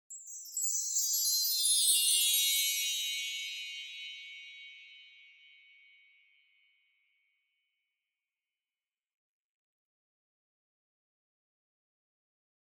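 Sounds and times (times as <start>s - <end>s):
wind chimes with reverb: 0.1s - 6.8s.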